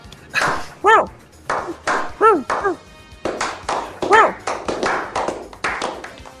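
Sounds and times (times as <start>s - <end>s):
dachshund barking: 0.4s - 2.8s, 4.0s - 4.6s.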